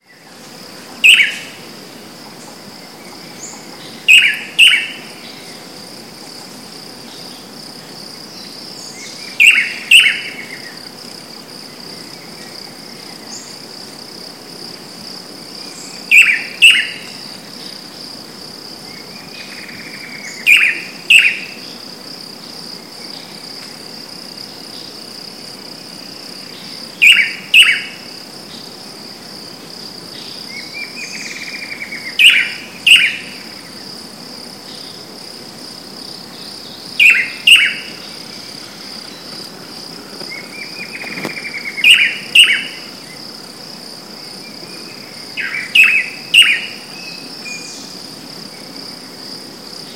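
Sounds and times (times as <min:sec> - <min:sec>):
Chiroxiphia caudata: 0:01.0 - 0:01.5, 0:02.4 - 0:05.6, 0:08.4 - 0:10.8, 0:15.7 - 0:17.2, 0:19.0 - 0:21.8, 0:26.6 - 0:28.0, 0:30.2 - 0:33.4, 0:36.4 - 0:39.4, 0:40.2 - 0:42.9, 0:44.8 - 0:48.0.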